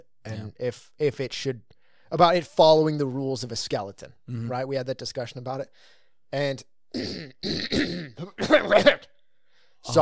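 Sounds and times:
speech: 0:00.2 - 0:09.1, 0:09.8 - 0:10.0
throat clearing from post-nasal drip: 0:07.0 - 0:09.1.

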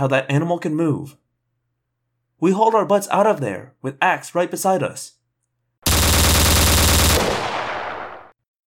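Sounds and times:
speech: 0:00.0 - 0:01.2, 0:02.4 - 0:05.2
automatic gunfire burst with rolling echo: 0:05.8 - 0:08.4.

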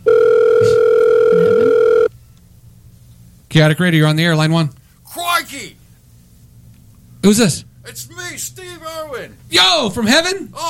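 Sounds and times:
telephone ringing with a steady electronic tone: 0:00.0 - 0:02.1
speech: 0:03.6 - 0:04.8, 0:05.4 - 0:05.8, 0:07.2 - 0:10.6.

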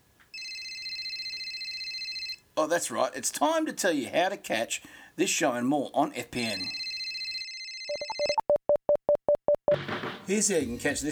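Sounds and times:
telephone ringing with a loud steady electronic trill: 0:00.3 - 0:02.4, 0:06.4 - 0:08.9
speech: 0:02.6 - 0:06.8, 0:10.3 - 0:11.0.

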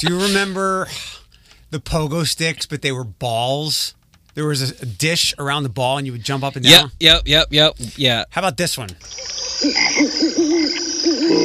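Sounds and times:
speech: 0:00.0 - 0:11.4
frogs from a beer commercial croaking in low swooping calls: 0:09.0 - 0:11.4.

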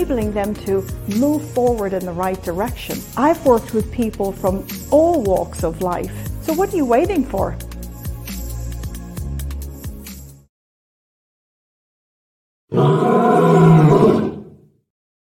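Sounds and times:
speech: 0:00.0 - 0:07.7
lion roaring: 0:12.7 - 0:14.7.

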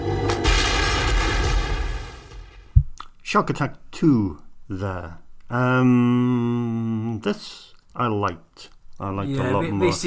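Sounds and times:
underwater demolition explosion from a film soundtrack: 0:00.0 - 0:02.9
speech: 0:03.3 - 0:10.0.

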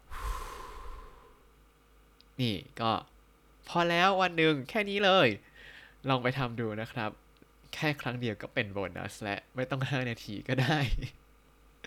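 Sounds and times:
person breathing deeply in and out: 0:00.0 - 0:01.5
speech: 0:02.4 - 0:11.2.

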